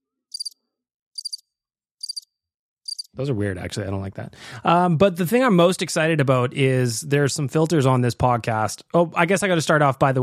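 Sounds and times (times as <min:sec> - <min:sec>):
cricket chirping sound effect played from a Rodecaster: 0:00.3 - 0:00.6, 0:01.2 - 0:01.4, 0:02.0 - 0:02.3, 0:02.9 - 0:03.1
speech: 0:03.2 - 0:10.2.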